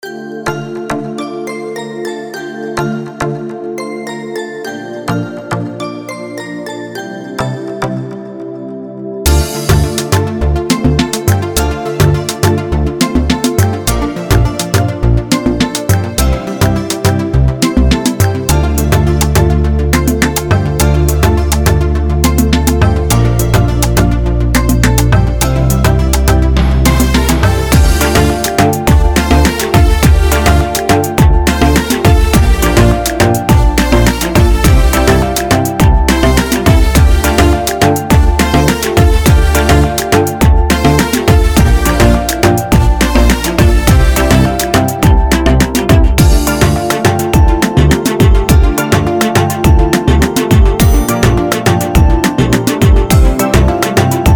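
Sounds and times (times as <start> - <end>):
dancehall music: 0.0 - 54.3.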